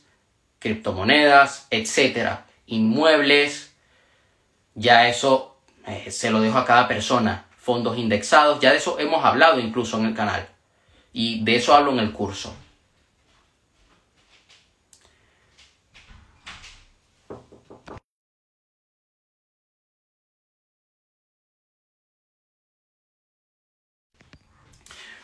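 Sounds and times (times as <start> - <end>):
speech: 0.6 - 3.7, 4.8 - 10.5, 11.1 - 12.6
knocking on a door: 17.3 - 18.0.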